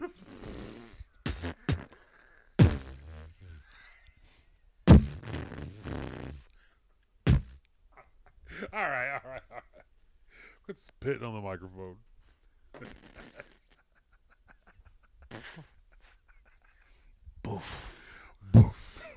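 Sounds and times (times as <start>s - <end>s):
laughter-like vocal sounds: 0.0s - 2.6s, 7.9s - 9.9s, 12.7s - 17.1s, 18.5s - 19.1s
two men making sputtering fart noises with their voices: 0.0s - 3.6s, 4.9s - 6.5s, 7.3s - 7.6s, 12.7s - 13.9s, 15.2s - 15.8s, 18.5s - 19.0s
speech: 10.7s - 12.1s, 12.8s - 13.1s.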